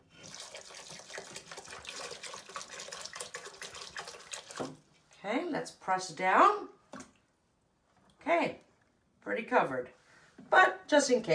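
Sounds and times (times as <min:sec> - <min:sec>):
water pouring into a pan of eggplants and salt: 0:00.0 - 0:04.8
speech: 0:04.6 - 0:06.7, 0:08.3 - 0:08.6, 0:09.3 - 0:11.3.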